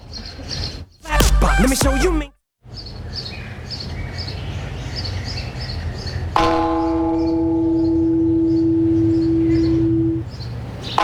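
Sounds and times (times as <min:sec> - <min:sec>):
birds chirping: 0:00.0 - 0:11.0
speech: 0:01.6 - 0:02.4
church bell ringing played from a tape: 0:06.4 - 0:10.3.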